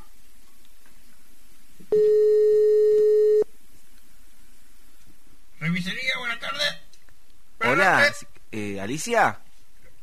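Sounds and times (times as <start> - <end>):
telephone beeps on an international call to Chile: 1.9 - 3.5
speech: 7.8 - 9.5.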